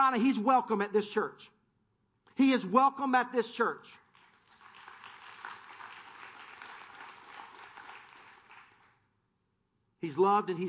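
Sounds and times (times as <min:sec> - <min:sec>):
speech: 0:00.0 - 0:01.6, 0:02.4 - 0:04.0, 0:10.0 - 0:10.6
large church audience clapping: 0:04.0 - 0:09.0.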